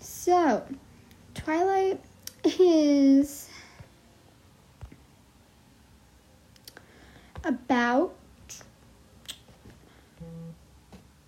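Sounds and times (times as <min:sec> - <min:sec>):
speech: 0:00.3 - 0:00.9, 0:01.5 - 0:03.5, 0:07.4 - 0:08.2
water bottle buzzing: 0:10.2 - 0:10.6.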